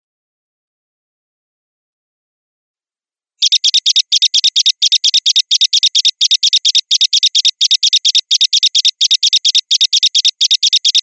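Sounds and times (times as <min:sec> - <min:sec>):
Java sparrow song of short clicking high notes: 0:03.4 - 0:11.0.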